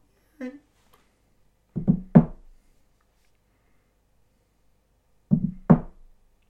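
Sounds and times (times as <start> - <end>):
faint voice-like sound: 0.0 - 0.8
knocking on a door: 1.8 - 2.5, 5.3 - 6.1.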